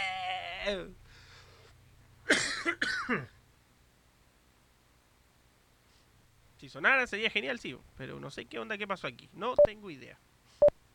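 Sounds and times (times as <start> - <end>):
speech: 0.6 - 1.0, 2.3 - 3.4, 6.6 - 10.3
person coughing hard: 2.3 - 3.4.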